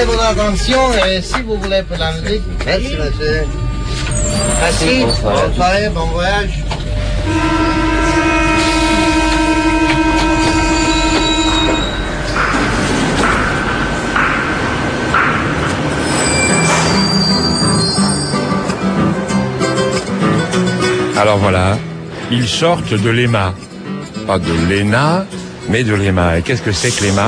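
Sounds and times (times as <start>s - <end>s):
speech: 0.0s - 8.3s, 21.2s - 23.7s, 24.3s - 27.2s
metro train rumbling along the rails: 0.0s - 20.2s
metro train wheels squealing: 2.0s - 5.8s, 10.0s - 12.4s, 15.9s - 18.8s.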